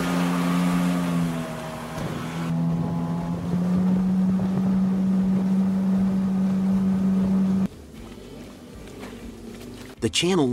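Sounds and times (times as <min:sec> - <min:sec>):
small homemade boat motor droning: 0:00.0 - 0:10.5
water rushing past a small homemade boat: 0:00.0 - 0:10.5
wind buffeting the microphone: 0:01.8 - 0:07.7
speech: 0:10.0 - 0:10.5.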